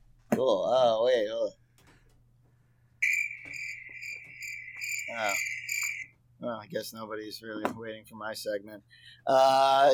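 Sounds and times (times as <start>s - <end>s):
speech: 0.4s - 1.6s, 5.1s - 5.6s, 6.4s - 9.9s
brief rising squeak: 3.0s - 6.1s
cricket chirp sound effect: 3.0s - 6.1s.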